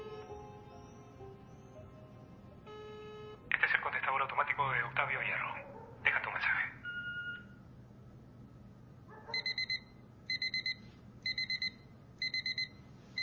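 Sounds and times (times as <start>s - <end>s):
alarm clock ringing with a loud electronic beep in a bedroom at dawn: 0.0s - 3.5s, 9.4s - 13.2s
low hum: 0.0s - 13.2s.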